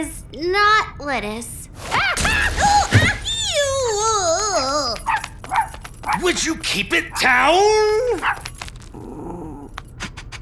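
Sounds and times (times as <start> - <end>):
speech: 0.0 - 3.0, 6.2 - 9.0
bright metallic jangling and rattling: 1.8 - 9.0
small dog growling: 8.1 - 9.9.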